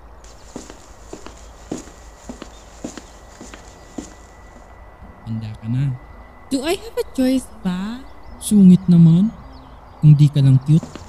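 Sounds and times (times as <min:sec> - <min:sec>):
footsteps of two people walking along the side of a road: 0:00.0 - 0:04.8, 0:10.7 - 0:11.0
faint high-pitched whine: 0:00.0 - 0:11.0
hum: 0:00.0 - 0:11.0
speech: 0:05.3 - 0:09.4, 0:10.0 - 0:10.9.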